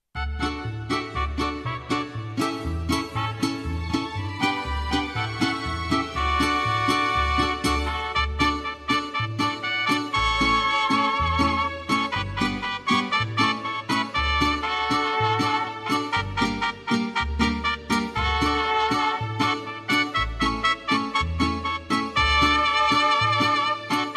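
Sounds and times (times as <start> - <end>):
mariachi music: 0.1 - 24.1.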